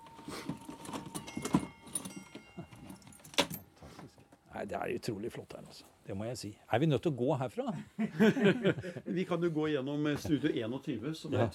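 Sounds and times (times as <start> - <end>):
horse bridle being handled, metal jingling: 0.6 - 3.8
speech: 4.6 - 11.5
laughter: 7.7 - 9.3.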